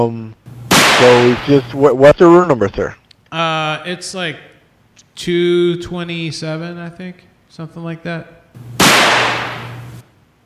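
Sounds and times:
speech: 0.0 - 0.4, 1.0 - 4.5, 5.2 - 9.5
firecracker bang set off in a small hotel bathroom: 0.6 - 1.6, 8.6 - 10.0.

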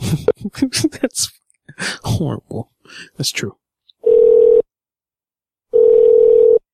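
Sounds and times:
speech: 0.1 - 3.6
telephone call tone beeps as a network error signal: 5.8 - 6.6.

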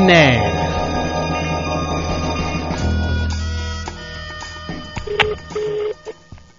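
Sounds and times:
speech: 0.0 - 0.5
dense buzzy telephone line noise: 0.0 - 6.4
unusual foreign telephone ringing tone on a call to a restaurant in Penang, Malaysia: 5.0 - 6.2.

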